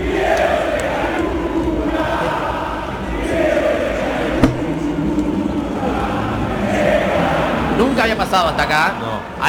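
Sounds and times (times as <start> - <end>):
huge stadium crowd chanting at a player: 0.0 - 7.8
sharp thump: 4.4 - 4.9
speech: 8.3 - 9.4.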